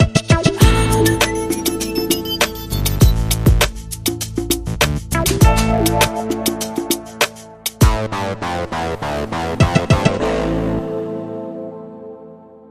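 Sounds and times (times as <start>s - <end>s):
R&B groove: 0.0s - 8.3s, 9.0s - 10.6s.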